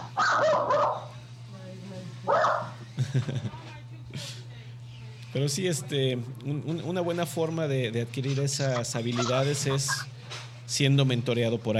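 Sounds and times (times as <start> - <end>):
dog barking: 0.0 - 1.2, 2.3 - 2.8
steady low electrical hum: 0.0 - 11.7
laughter: 2.8 - 4.5
speech: 3.1 - 4.3, 5.3 - 10.1, 10.7 - 11.7.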